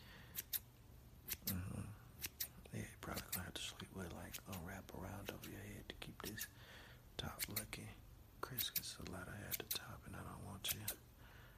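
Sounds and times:
scissors trimming the top of someone's hair: 0.3s - 0.7s, 1.3s - 1.6s, 2.2s - 2.5s, 3.1s - 3.4s, 4.3s - 4.7s, 7.4s - 7.7s, 8.6s - 8.9s, 9.5s - 9.8s
speech: 3.6s - 11.1s.

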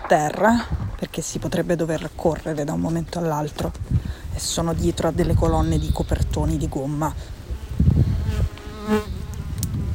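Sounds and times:
speech: 0.1s - 7.4s, 8.9s - 9.1s
flies buzzing: 6.8s - 9.9s.

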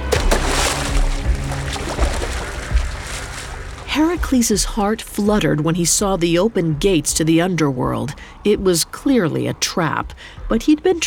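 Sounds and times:
man diving into a river: 0.0s - 3.9s
river water splashing and churning: 0.0s - 5.7s
speech: 4.0s - 11.0s.

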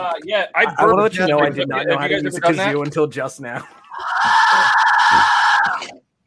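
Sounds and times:
speech: 0.0s - 6.0s
Mayan death whistle shriek: 3.9s - 5.8s.

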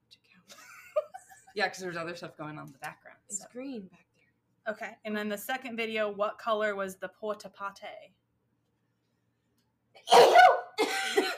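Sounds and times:
speech: 1.6s - 4.1s, 4.7s - 8.2s
person sneezing: 10.0s - 11.3s.

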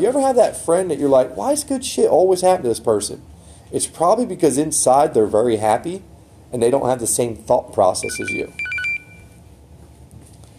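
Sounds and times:
speech: 0.0s - 8.6s
low hum: 0.0s - 10.5s
phone call notification beep: 8.0s - 9.4s.

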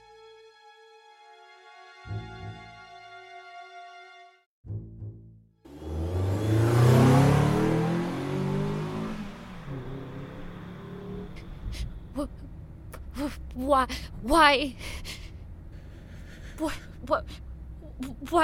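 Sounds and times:
car engine revving as the car is shifted into gear and accelerating: 5.7s - 13.6s
speech: 13.6s - 15.2s, 16.6s - 17.4s, 18.0s - 18.4s.

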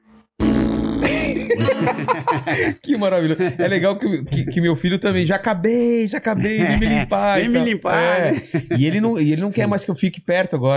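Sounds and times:
loud sustained fart: 0.4s - 1.6s
laughter: 1.0s - 4.9s, 6.3s - 9.1s
speech: 1.3s - 10.7s.

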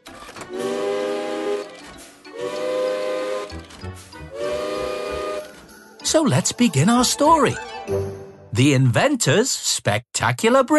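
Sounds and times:
alarm clock built from old railway engine steam whistles blasting: 0.5s - 3.6s, 4.3s - 5.6s
speech: 6.1s - 10.7s.

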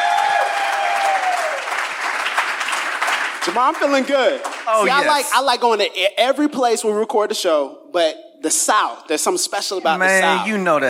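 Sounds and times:
faint cheers: 0.0s - 1.7s
live audience applause: 0.0s - 5.2s
speech: 3.4s - 10.8s.

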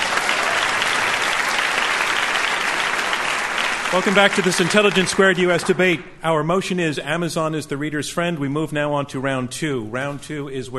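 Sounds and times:
large audience applauding: 0.0s - 6.0s
speech: 3.9s - 10.7s.

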